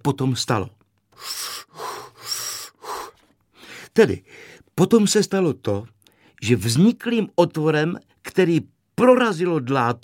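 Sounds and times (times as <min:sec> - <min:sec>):
speech: 0:00.0 - 0:01.7, 0:04.0 - 0:10.0
person drawing deep breaths: 0:01.2 - 0:04.6.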